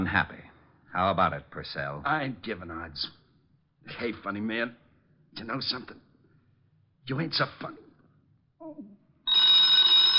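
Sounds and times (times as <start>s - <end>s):
speech: 0.0s - 3.2s, 3.8s - 4.8s, 5.4s - 6.0s, 7.1s - 7.8s, 8.6s - 9.0s
telephone bell ringing: 9.3s - 10.1s.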